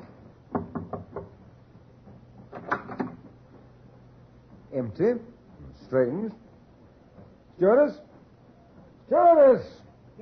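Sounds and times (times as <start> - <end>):
knocking on a cabin door: 0.5 - 1.5
speech: 4.8 - 6.4, 7.6 - 8.1, 9.1 - 9.8.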